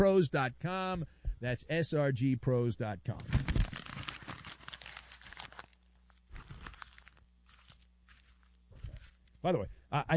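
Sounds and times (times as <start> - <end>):
speech: 0.0 - 3.4, 9.4 - 10.1
faint steady hum: 0.0 - 10.1
paper being folded and crumpled: 3.2 - 9.4.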